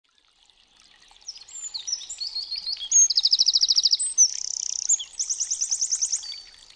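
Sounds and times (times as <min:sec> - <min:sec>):
Eurasian wren singing: 0:01.3 - 0:06.4.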